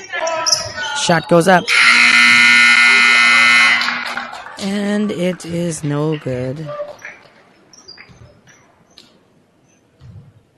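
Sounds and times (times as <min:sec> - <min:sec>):
speech: 0:01.0 - 0:01.8, 0:04.6 - 0:06.8
basketball game electronic buzzer marking end of third quarter: 0:01.6 - 0:04.3.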